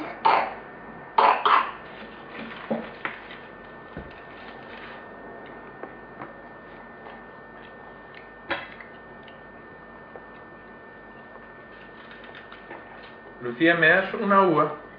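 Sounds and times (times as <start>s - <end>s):
person coughing harshly: 0.0s - 0.6s, 1.2s - 1.8s
speech: 13.4s - 14.8s.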